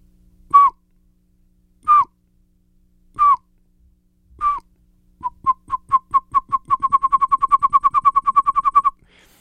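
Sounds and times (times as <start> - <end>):
person whistling an imitation of a pygmy owl call: 0.5 - 0.8, 1.8 - 2.2, 3.2 - 3.5, 4.4 - 9.0.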